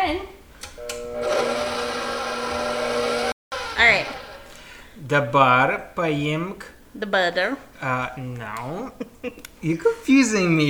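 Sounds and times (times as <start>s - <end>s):
speech: 0.1s - 0.4s, 5.1s - 10.6s
electric mixer whirring through dry baking ingredients: 0.8s - 4.9s.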